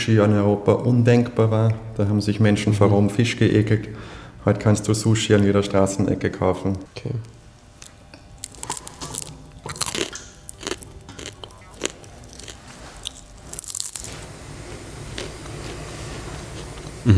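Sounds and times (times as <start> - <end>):
speech: 0.0 - 7.4
man biting and crunching a grasshopper at an insect-eating event: 7.8 - 14.2
man chewing a grasshopper: 7.8 - 14.2.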